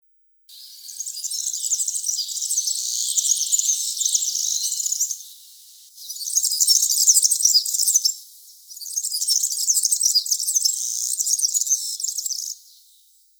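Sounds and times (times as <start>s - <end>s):
Serinus serinus singing: 0.5s - 13.0s.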